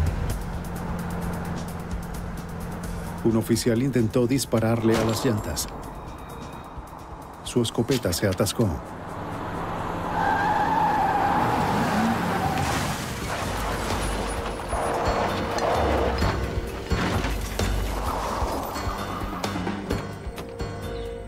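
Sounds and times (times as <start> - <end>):
car engine roaring: 0.0 - 20.5
speech: 3.2 - 6.0, 7.6 - 9.0
car tires squealing in a skid: 9.4 - 20.0
car crashing into a police patrol car: 11.6 - 18.8.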